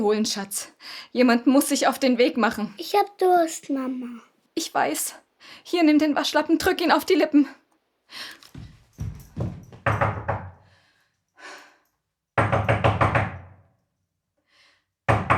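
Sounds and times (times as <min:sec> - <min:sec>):
speech: 0:00.0 - 0:08.4
faint breathy sound: 0:08.1 - 0:08.8, 0:10.6 - 0:12.0
knocking on a door: 0:09.0 - 0:10.6, 0:12.4 - 0:13.6, 0:15.1 - 0:15.3.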